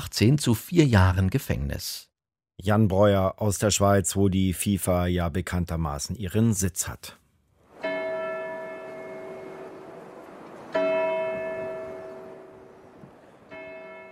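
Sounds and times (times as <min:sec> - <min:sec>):
speech: 0:00.0 - 0:07.2
church bell tolling: 0:07.7 - 0:14.1.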